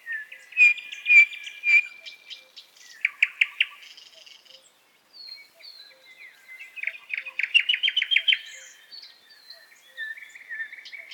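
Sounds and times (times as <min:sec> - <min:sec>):
nightingale singing whistled notes and chips: 0:00.0 - 0:11.1.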